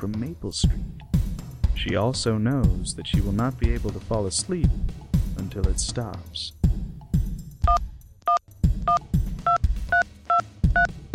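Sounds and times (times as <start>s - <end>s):
speech: 0.0s - 1.1s, 1.8s - 6.6s
cell phone keypad dual-tone dialing beeps: 7.7s - 10.9s.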